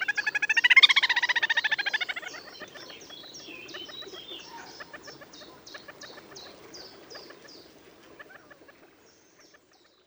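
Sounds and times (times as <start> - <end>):
little grebe trilling call: 0.0 - 5.2.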